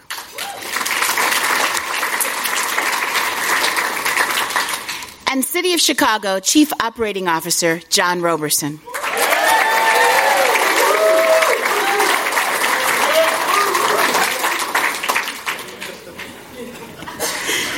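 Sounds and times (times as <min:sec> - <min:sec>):
crowd clapping: 0:00.0 - 0:05.2, 0:08.9 - 0:17.2
cheers: 0:00.1 - 0:01.2, 0:08.9 - 0:15.2
speech: 0:05.3 - 0:08.9
laughter: 0:15.7 - 0:17.7.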